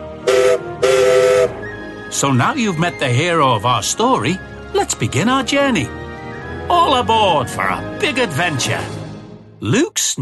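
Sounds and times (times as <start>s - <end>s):
whistle of a small narrow gauge steam locomotive at a quarry: 0.2s - 1.8s
speech: 2.2s - 6.1s, 6.7s - 9.0s, 9.6s - 10.1s.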